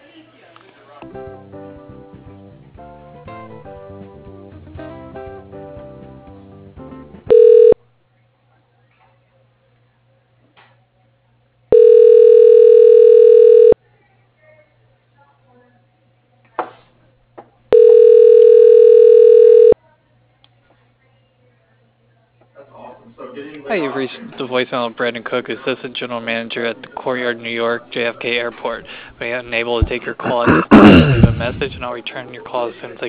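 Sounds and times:
speech: 1.0s - 1.6s, 24.0s - 33.0s
telephone ringback tones as a call is being transferred: 7.3s - 7.8s, 11.7s - 13.8s, 17.7s - 19.8s.

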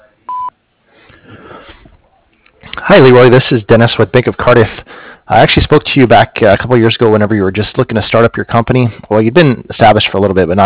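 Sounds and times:
answering machine beep: 0.3s - 0.5s
speech: 2.9s - 10.6s.

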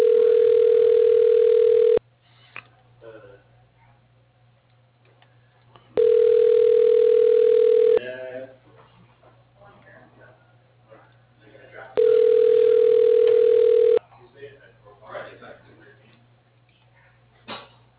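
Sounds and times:
ringback tone on a phone line during automated call transfer: 0.0s - 2.0s, 6.0s - 8.0s, 12.0s - 14.0s.

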